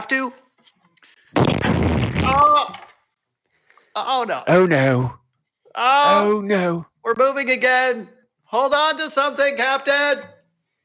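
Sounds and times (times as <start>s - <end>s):
speech: 0.0s - 0.4s, 1.3s - 2.9s, 4.0s - 5.2s, 5.8s - 10.3s
cannon blast: 1.4s - 2.4s.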